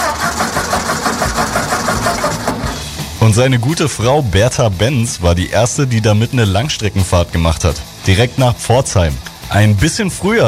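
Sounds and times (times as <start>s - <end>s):
1886 Benz petrol-powered car engine starting and chugging: 0.0s - 5.0s
speech: 3.3s - 10.4s.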